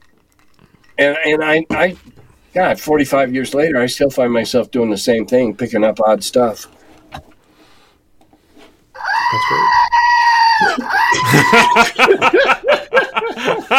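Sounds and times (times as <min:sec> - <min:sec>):
speech: 0:01.0 - 0:07.3, 0:10.8 - 0:13.7
screaming goat novelty toy bleating scream: 0:09.0 - 0:11.9
laughter: 0:10.6 - 0:13.7.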